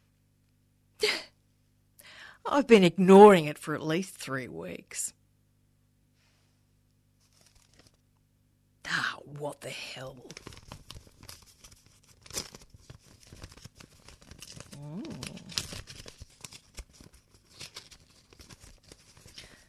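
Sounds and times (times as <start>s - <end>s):
speech: 2.4s - 5.2s, 8.9s - 10.6s
envelope being torn open: 7.2s - 8.0s, 10.3s - 19.6s
paper crinkling: 7.2s - 8.0s, 10.2s - 19.6s
murmured vocal sound: 14.7s - 15.6s.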